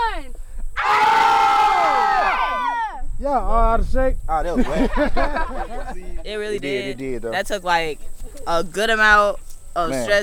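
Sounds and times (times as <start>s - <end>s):
group of hikers yelling together on an elevated hill: 0.8s - 3.1s
speech: 3.3s - 10.2s
laughter: 4.4s - 7.1s.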